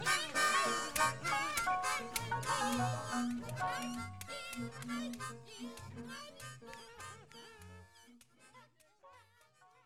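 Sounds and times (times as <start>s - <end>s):
harmonica playing: 0.0s - 7.9s.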